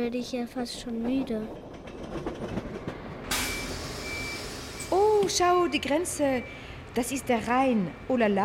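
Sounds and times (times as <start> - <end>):
speech: 0.0 - 2.7, 4.9 - 8.4
train running slowly on rails: 0.0 - 8.4.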